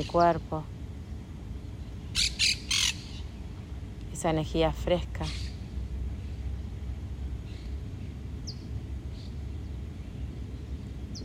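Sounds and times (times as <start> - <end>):
speech: 0.0 - 0.8, 4.2 - 5.4
low rumbling background: 0.0 - 11.2
bird giving harsh squawking calls: 2.2 - 3.2.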